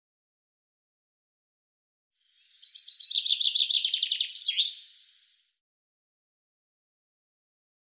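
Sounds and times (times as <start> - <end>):
common chaffinch song: 2.2 - 5.6.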